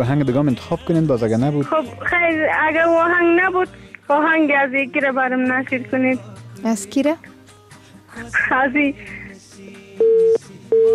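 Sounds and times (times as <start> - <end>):
speech: 0.0 - 7.3, 8.2 - 9.2
telephone busy tone after a call drops: 10.0 - 10.9.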